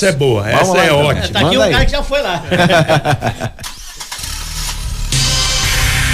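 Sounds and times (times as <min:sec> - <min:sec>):
speech: 0:00.0 - 0:03.7
laughter: 0:00.6 - 0:03.8
engine revving hard at high RPM: 0:03.6 - 0:06.1.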